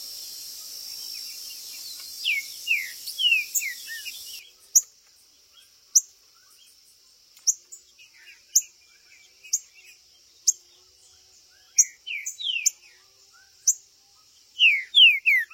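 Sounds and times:
green-winged saltator whistling in a contest: 2.2s - 4.4s, 14.6s - 15.5s.

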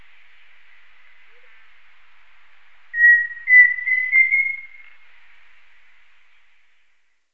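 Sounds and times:
pheasant cuckoo Dromococcyx phasianellus calling: 3.0s - 4.9s.

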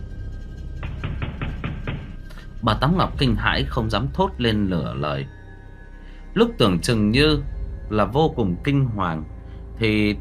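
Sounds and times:
loud heavy banging on a door: 0.8s - 2.3s
speech: 2.6s - 5.4s, 6.4s - 10.2s.

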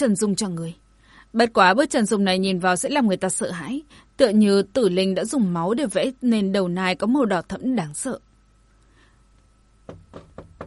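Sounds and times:
speech: 0.0s - 8.3s
knocking on a door: 9.8s - 10.6s.

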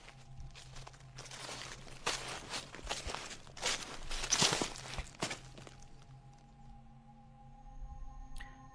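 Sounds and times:
footsteps rustling on dry leaves at night: 0.0s - 6.2s.

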